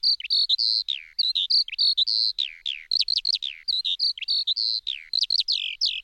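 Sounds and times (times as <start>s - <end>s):
Eurasian skylark singing: 0.0s - 6.0s.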